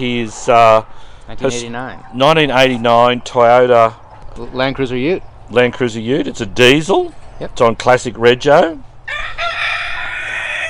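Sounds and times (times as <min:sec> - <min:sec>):
speech: 0:00.0 - 0:09.5
rooster crowing: 0:09.0 - 0:10.6.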